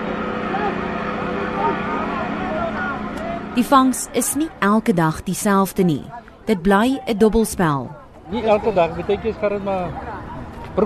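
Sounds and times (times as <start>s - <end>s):
fishing boat engines droning: 0.0s - 10.8s
indistinct voices: 1.4s - 8.1s
speech: 3.6s - 10.1s.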